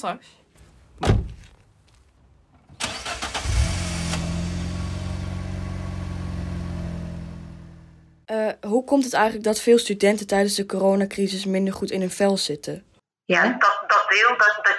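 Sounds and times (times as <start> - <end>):
speech: 0.0 - 0.4, 8.3 - 14.7
thud: 1.0 - 1.5
car engine cranking, catching and running: 2.6 - 8.3.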